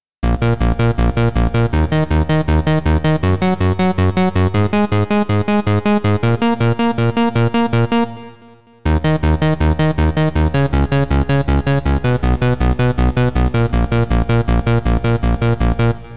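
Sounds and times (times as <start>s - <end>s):
straight arpeggio: 0.8s - 16.1s.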